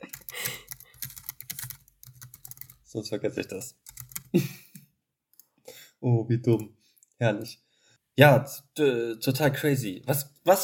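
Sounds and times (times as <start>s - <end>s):
rapid typing on a computer keyboard while jotting down a note: 0.0s - 2.8s, 3.8s - 4.8s
speech: 2.9s - 4.6s, 6.0s - 7.6s, 8.2s - 10.6s.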